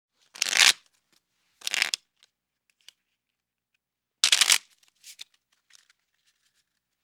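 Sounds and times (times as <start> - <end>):
playing cards shuffling: 0.4 - 0.8, 1.6 - 2.0, 4.2 - 4.6.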